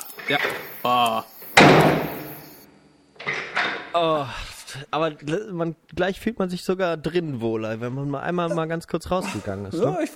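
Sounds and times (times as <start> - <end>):
speech: 0.3 - 2.0, 3.9 - 10.1
door swinging open with loud ringing thud: 1.5 - 2.5
door shutting with soft knocks as it latches: 1.6 - 2.4.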